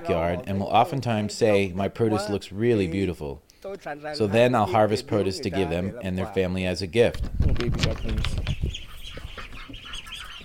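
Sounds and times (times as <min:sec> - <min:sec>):
speech: 0:00.0 - 0:08.5
ducklings rustling and scuffling as they move around: 0:07.0 - 0:10.4
two-week-old ducklings of egg-laying breeds peeping and chirping: 0:07.6 - 0:10.4.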